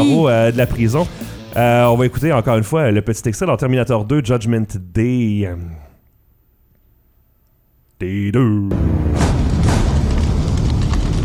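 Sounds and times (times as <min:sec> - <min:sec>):
speech: 0:00.2 - 0:05.8, 0:08.0 - 0:09.2
fire sound effect from a film: 0:09.6 - 0:11.2.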